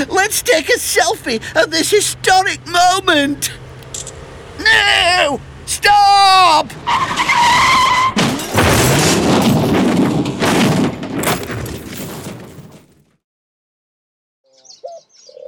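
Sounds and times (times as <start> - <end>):
speech: 0.0 - 3.6, 4.6 - 7.9
car tire screech as it skids: 0.0 - 10.8
car crashing into the back of a delivery van: 6.7 - 13.1.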